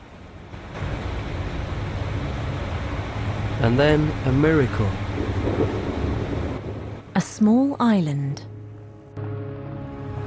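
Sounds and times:
heavy rain hammering down: 0.0s - 7.4s
speech: 3.6s - 5.5s, 7.2s - 8.5s.

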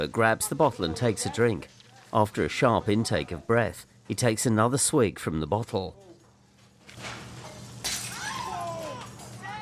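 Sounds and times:
speech: 0.0s - 6.1s
low hum: 0.0s - 9.6s
plate smashing on a hard floor: 7.8s - 8.4s.

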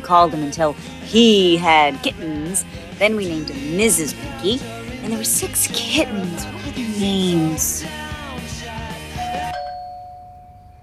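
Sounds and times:
speech: 0.1s - 8.0s
doorbell ringing in a home: 9.1s - 10.8s.

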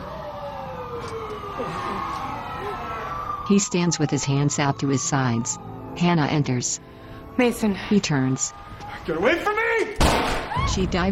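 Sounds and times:
police car sirens wailing: 0.0s - 11.1s
speech: 1.0s - 9.6s, 10.6s - 11.1s.

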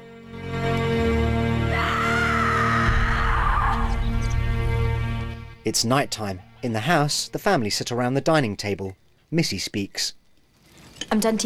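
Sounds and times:
steady low droning background: 0.0s - 8.8s
woman screaming in anguish: 1.6s - 4.4s
speech: 5.7s - 10.2s, 11.0s - 11.4s.

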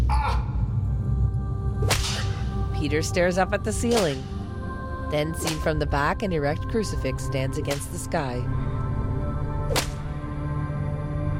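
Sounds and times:
low rumbling background: 0.0s - 11.3s
cane whipping the soles of a man's bare feet: 1.9s - 2.4s, 3.9s - 4.3s, 9.7s - 10.0s
speech: 2.8s - 4.4s, 5.1s - 8.6s.

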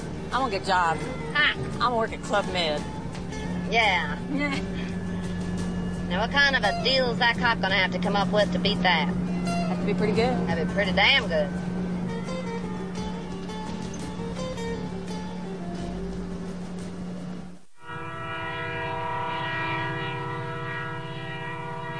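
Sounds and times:
train rail rumble: 0.0s - 21.9s
speech: 0.3s - 3.0s, 3.7s - 4.8s, 6.1s - 11.7s
train horn blaring: 3.4s - 13.5s, 17.8s - 21.9s.

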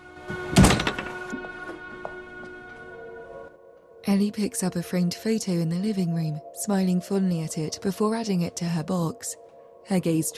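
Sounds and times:
front door pushed shut with a solid thunk: 0.5s - 1.2s
door latch rattling as it settles: 0.5s - 1.3s
speech: 4.1s - 10.3s.

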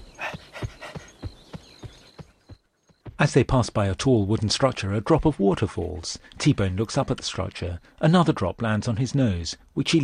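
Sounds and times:
dogs panting after a long walk across hills: 0.0s - 2.5s
speech: 3.2s - 10.0s.

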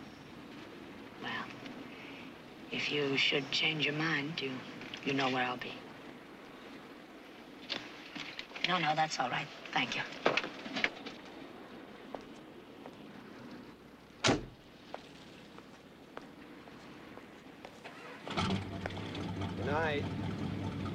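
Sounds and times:
speech: 2.7s - 5.8s, 8.7s - 10.4s
car door thudding shut: 14.2s - 14.6s
car engine starting with a low steady hum: 17.8s - 20.9s.

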